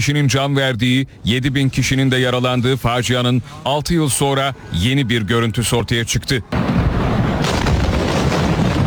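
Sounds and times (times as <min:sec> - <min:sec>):
speech: 0:00.0 - 0:06.7
huge explosion at a depot after a fire, in news footage: 0:06.6 - 0:08.8.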